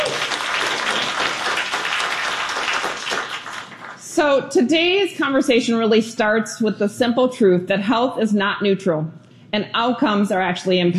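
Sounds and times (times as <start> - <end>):
crowd applauding: 0.0 - 4.0
speech: 4.2 - 10.9.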